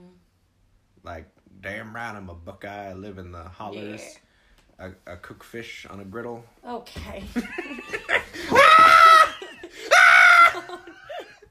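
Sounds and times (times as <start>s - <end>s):
speech: 1.0s - 4.2s, 4.8s - 8.6s
laughter-like sounds: 7.3s - 11.4s
person screaming high-pitched: 8.5s - 10.8s.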